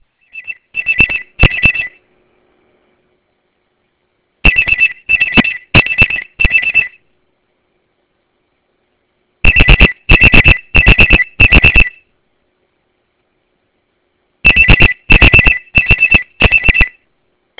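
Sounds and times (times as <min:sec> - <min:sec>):
Benefon Delta phone alarm: 0:00.2 - 0:02.0, 0:04.4 - 0:07.0, 0:09.4 - 0:12.0, 0:14.4 - 0:17.0.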